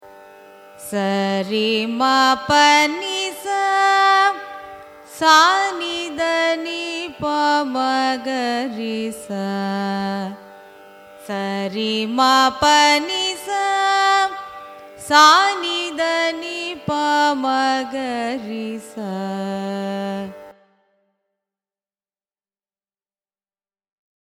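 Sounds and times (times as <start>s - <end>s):
carnatic raga ascending and descending scale: 0.0s - 21.1s.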